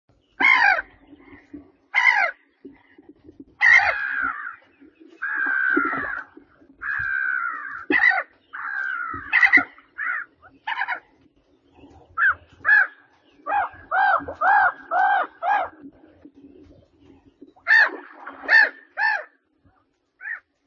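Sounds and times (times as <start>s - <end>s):
Mediterranean gull calling: 0.4s - 2.9s, 3.6s - 11.1s, 12.2s - 16.0s, 17.5s - 19.4s.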